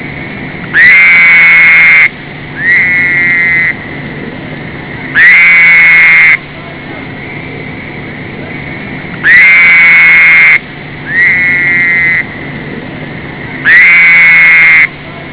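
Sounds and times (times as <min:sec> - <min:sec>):
Fowler's toad calling: 0:00.7 - 0:03.8, 0:05.2 - 0:06.4, 0:09.2 - 0:12.3, 0:13.6 - 0:14.9.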